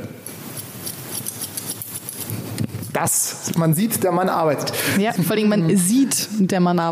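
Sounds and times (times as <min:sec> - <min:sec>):
scissors cutting hair: 0:00.5 - 0:02.4
speech: 0:03.0 - 0:06.8.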